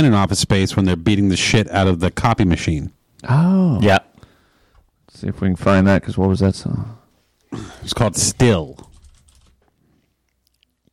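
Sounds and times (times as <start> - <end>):
speech: 0.0 - 4.1, 5.1 - 8.9
typing on a keyboard: 8.8 - 9.6.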